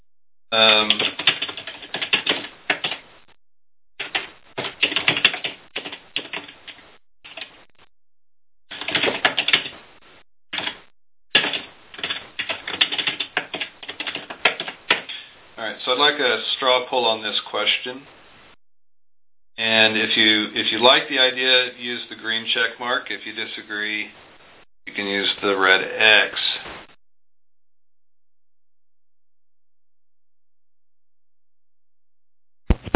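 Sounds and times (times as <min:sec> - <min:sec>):
speech: 0:00.5 - 0:00.9, 0:16.2 - 0:18.2, 0:19.6 - 0:24.2, 0:24.9 - 0:26.4
keyboard typing: 0:00.7 - 0:03.0, 0:04.0 - 0:07.6, 0:08.7 - 0:09.8, 0:10.6 - 0:15.1.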